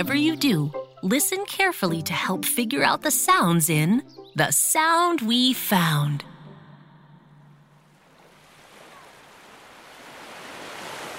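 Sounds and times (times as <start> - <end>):
speech: 0.0 - 6.3
ocean waves washing onto a beach seashore: 7.9 - 11.1.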